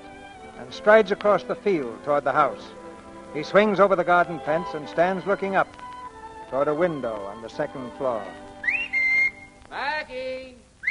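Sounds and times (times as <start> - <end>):
speech: 0.6 - 5.8, 6.5 - 8.5
man whistling to call someone: 8.6 - 9.6.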